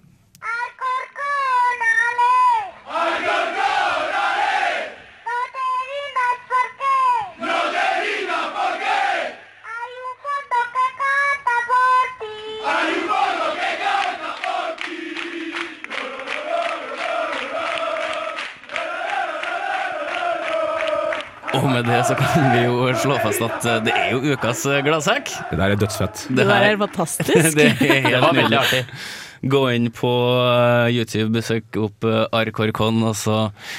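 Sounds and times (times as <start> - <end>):
young girl leading a football supporters' chant: 0.4 - 2.9, 5.2 - 7.5, 9.6 - 12.8
crowd of football supporters roaring chant lines: 2.5 - 5.5, 6.2 - 9.7, 12.6 - 28.7
laughter: 21.5 - 29.0
speech: 21.8 - 33.7.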